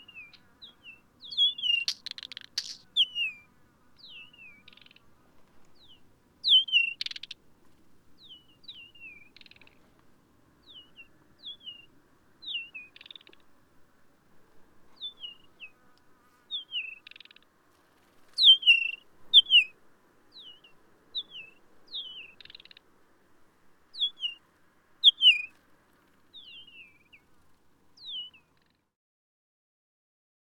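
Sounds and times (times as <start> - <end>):
three male birds singing whistled songs in a territorial dispute: 0.0 - 5.0, 5.8 - 7.4, 8.2 - 9.8, 10.6 - 13.4, 15.0 - 15.7, 16.5 - 17.4, 18.4 - 19.7, 20.3 - 22.8, 24.0 - 24.4, 25.0 - 25.6, 26.3 - 27.2, 28.0 - 28.7.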